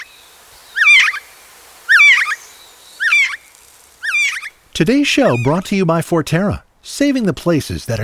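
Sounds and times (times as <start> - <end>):
gray jay calling: 0.0 - 5.7
speech: 4.8 - 8.0.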